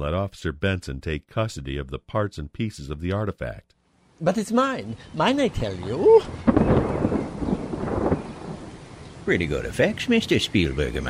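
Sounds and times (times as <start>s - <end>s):
speech: 0.0s - 7.3s, 9.3s - 11.0s
rain falling in a thunderstorm: 4.2s - 11.0s
thunder rumbling in a thunderstorm: 5.6s - 11.0s.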